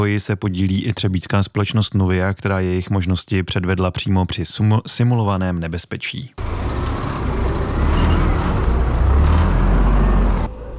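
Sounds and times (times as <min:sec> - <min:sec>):
speech: 0:00.0 - 0:06.6
army vehicle engine rumble driving past: 0:06.4 - 0:10.7
broadband road noise: 0:06.4 - 0:10.7.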